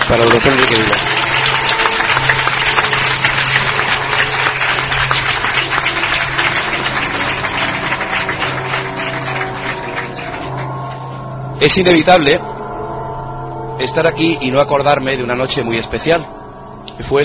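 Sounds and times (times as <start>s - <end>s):
audience applause at a gathering devoted to mystery topics: 0.0s - 11.1s
speech: 0.1s - 1.2s, 11.6s - 12.5s, 13.8s - 16.4s, 17.0s - 17.2s.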